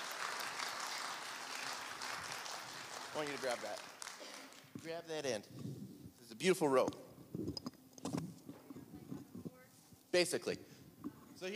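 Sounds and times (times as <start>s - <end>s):
crowd applauding: 0.0s - 5.0s
speech: 3.1s - 4.0s, 4.8s - 5.8s, 6.4s - 7.6s, 10.1s - 10.7s.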